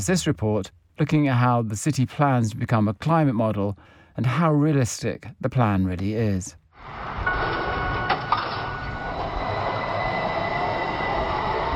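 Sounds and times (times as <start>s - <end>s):
speech: 0.0s - 7.3s
electric tram running in Turku, Finland: 6.9s - 11.7s
electric tram metallic squeals and clanks: 7.2s - 11.1s.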